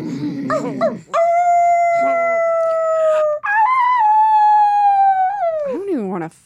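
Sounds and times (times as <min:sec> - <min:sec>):
short vocal sounds: 0:00.0 - 0:01.2
people imitating wolf howls with their voices: 0:00.0 - 0:05.8
speech: 0:00.5 - 0:01.3.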